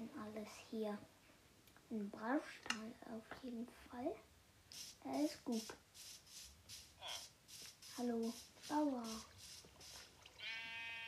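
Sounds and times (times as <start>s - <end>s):
speech: 0.2s - 1.2s, 1.9s - 6.2s, 8.0s - 9.3s
soft rustling: 4.7s - 10.3s
sheep bleating: 10.4s - 11.0s.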